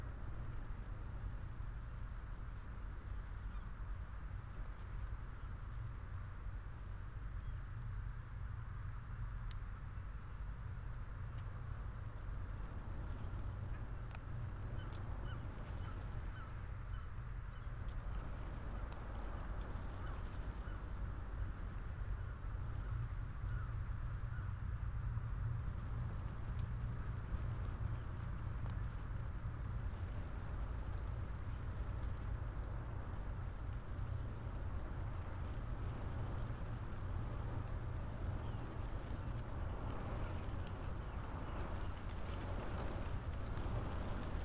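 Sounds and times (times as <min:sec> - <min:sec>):
wind through telegraph wires: 0:00.0 - 0:44.4
light ticks: 0:09.4 - 0:09.7, 0:11.2 - 0:16.6, 0:17.5 - 0:21.8, 0:25.5 - 0:44.4
deep steady roar: 0:11.6 - 0:44.4.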